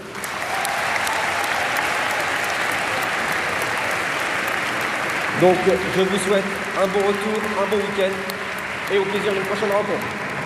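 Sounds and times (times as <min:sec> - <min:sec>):
audience applause: 0:00.0 - 0:10.4
speech: 0:05.4 - 0:10.2.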